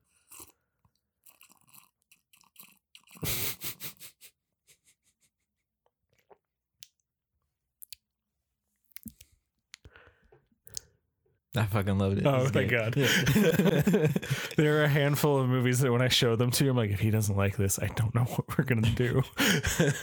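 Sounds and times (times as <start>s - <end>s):
loud slurping sip of tea: 0.0s - 4.2s, 13.0s - 14.6s
laughter: 3.2s - 4.3s, 12.0s - 15.8s, 18.6s - 20.0s
scattered mouth clicks: 10.7s - 10.9s
speech: 11.6s - 20.0s.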